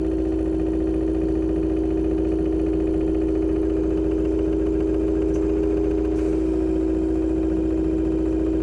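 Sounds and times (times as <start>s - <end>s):
generator running: 0.0s - 8.6s.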